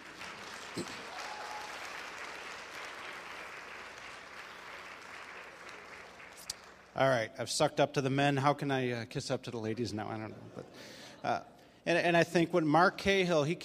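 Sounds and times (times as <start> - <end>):
audience applauding: 0.0 - 7.0
speech: 0.8 - 1.0, 7.0 - 13.6.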